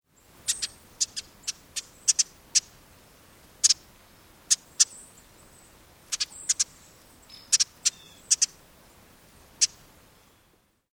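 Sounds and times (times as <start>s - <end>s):
bird calls: 0.4s - 2.7s, 3.6s - 3.8s, 4.5s - 8.6s, 9.6s - 10.5s.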